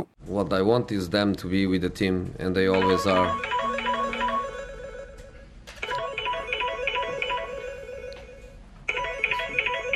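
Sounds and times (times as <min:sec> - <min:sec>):
speech: 0:00.0 - 0:03.7
melodic phone ringtone: 0:02.8 - 0:05.0, 0:05.8 - 0:09.9.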